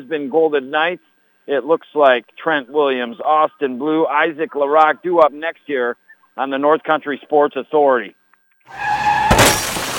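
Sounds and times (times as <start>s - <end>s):
speech: 0.0s - 8.9s
car crash: 8.7s - 9.9s
car tires screeching: 8.7s - 9.9s
glass shattering: 9.2s - 9.9s
debris clattering: 9.3s - 9.9s.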